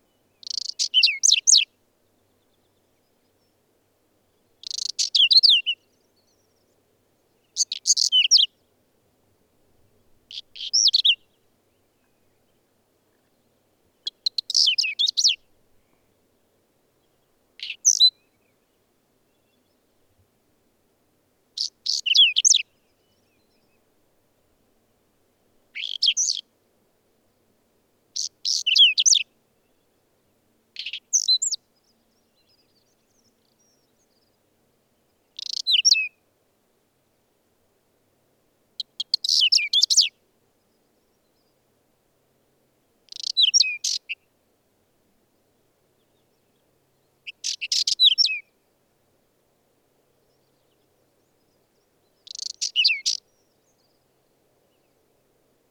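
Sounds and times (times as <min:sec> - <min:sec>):
whinchat singing in the mountains: 0:00.0 - 0:03.6, 0:04.3 - 0:08.7, 0:10.3 - 0:16.2, 0:17.0 - 0:20.0, 0:21.6 - 0:23.9, 0:25.8 - 0:26.5, 0:28.2 - 0:30.0, 0:30.8 - 0:34.4, 0:35.0 - 0:36.2, 0:38.8 - 0:41.6, 0:43.1 - 0:44.3, 0:45.9 - 0:48.6, 0:50.2 - 0:55.0.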